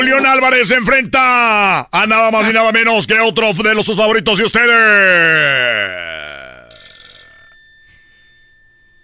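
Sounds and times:
speech: 0.1 - 6.3
telephone ringing: 6.7 - 9.0.

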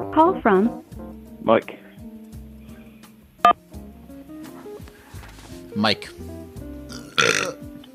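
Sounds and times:
speech: 0.2 - 0.9, 1.5 - 1.8, 5.8 - 6.3
loud burp: 6.9 - 7.7.

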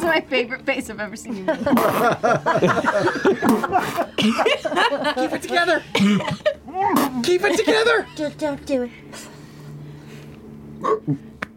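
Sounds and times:
speech: 0.2 - 9.3, 10.8 - 11.3
laughter: 1.3 - 8.3
vocal hiccup: 10.8 - 11.2.

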